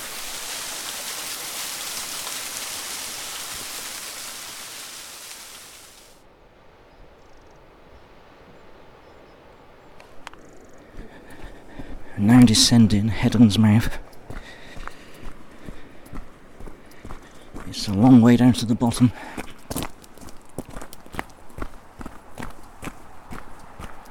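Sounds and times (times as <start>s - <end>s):
waterfall roaring: 0.0s - 6.2s
speech: 12.2s - 14.1s, 18.0s - 19.5s.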